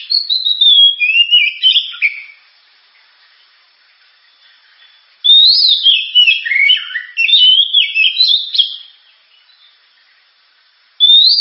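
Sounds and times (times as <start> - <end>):
Oriental magpie-robin song: 0.0 - 2.4, 4.3 - 9.8, 11.0 - 11.3.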